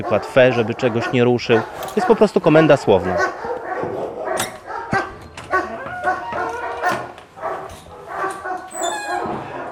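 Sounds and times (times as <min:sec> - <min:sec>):
speech: 0:00.0 - 0:03.9
police service dog barking at its kennel: 0:00.0 - 0:09.7
police service dog whining at its kennel: 0:04.2 - 0:07.2, 0:08.1 - 0:09.7.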